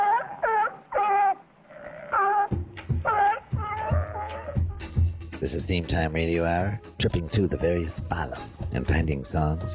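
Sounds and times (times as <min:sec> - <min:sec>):
sea lion barking: 0:00.0 - 0:05.1
speech: 0:05.4 - 0:09.7.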